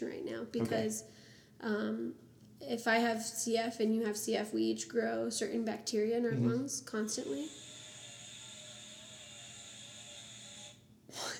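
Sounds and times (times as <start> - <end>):
speech: 0.0 - 7.7
children's tool puzzle toy shrill electronic whine: 7.0 - 10.8.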